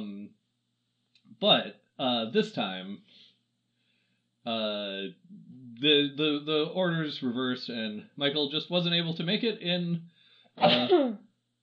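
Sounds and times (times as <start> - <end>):
speech: 1.4 - 3.2, 4.4 - 11.3
person sneezing: 10.6 - 11.0.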